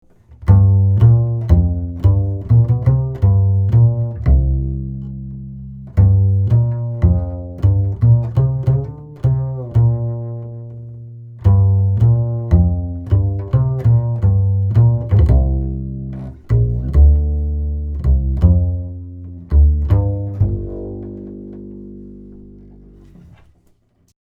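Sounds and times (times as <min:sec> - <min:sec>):
upright bass recorded through a Rupert Neve Designs Portico 5017 and Km 184: 0:00.0 - 0:23.6.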